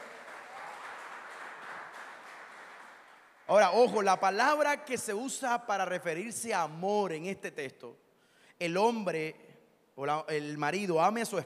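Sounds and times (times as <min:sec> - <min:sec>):
audience applauding: 0:00.0 - 0:03.8
speech: 0:03.5 - 0:08.0, 0:08.6 - 0:09.4, 0:10.0 - 0:11.4.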